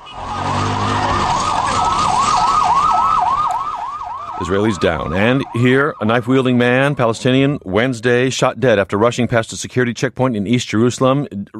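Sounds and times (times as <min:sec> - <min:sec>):
low rumble of a vehicle engine: 0:00.0 - 0:07.8
ambulance siren wailing in a yelp: 0:00.0 - 0:08.1
speech: 0:04.4 - 0:11.5.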